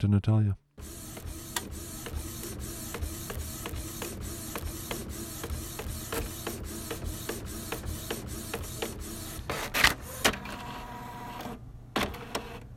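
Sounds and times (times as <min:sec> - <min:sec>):
speech: 0:00.0 - 0:00.6
printer print head clicking and sliding while printing a contract: 0:00.8 - 0:10.7
printer mechanical clunk and whir as the page feeds out: 0:00.8 - 0:12.7.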